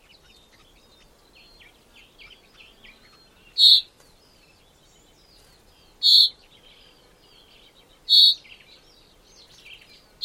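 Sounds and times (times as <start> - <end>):
other birds warbling softly: 0.0 - 10.2
common chaffinch giving sharp emphatic call notes: 3.6 - 3.9, 6.0 - 6.4, 8.1 - 8.4.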